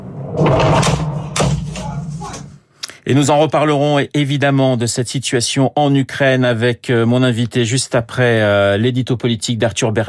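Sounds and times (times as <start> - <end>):
explosions recorded on a mobile phone: 0.0 - 2.6
rolling low rumble after explosions: 0.0 - 2.6
speech: 3.1 - 10.0.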